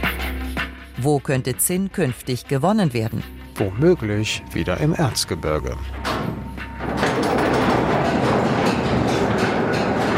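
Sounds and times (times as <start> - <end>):
speech: 1.0 - 6.1
old mine railway locomotive pulling several wagons: 4.1 - 10.1.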